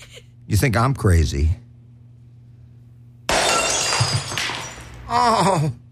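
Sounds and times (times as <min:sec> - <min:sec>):
speech: 0:00.6 - 0:01.6, 0:05.1 - 0:05.8
plasma TV screen smashing: 0:03.3 - 0:05.0
glass shattering: 0:03.3 - 0:05.1.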